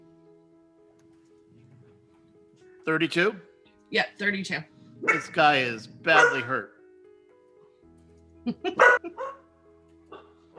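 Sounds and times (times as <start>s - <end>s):
speech: 2.8s - 6.8s, 8.4s - 9.4s
hellhounds barking harshly and snarling: 4.9s - 6.6s, 8.7s - 9.4s.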